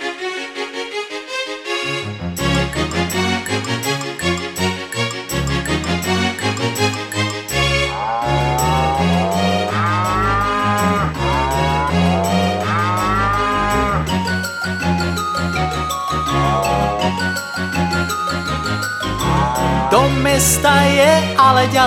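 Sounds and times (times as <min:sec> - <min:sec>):
steady busy musical backing: 0:00.0 - 0:21.8
cow mooing: 0:07.9 - 0:14.1
speech: 0:20.2 - 0:21.8.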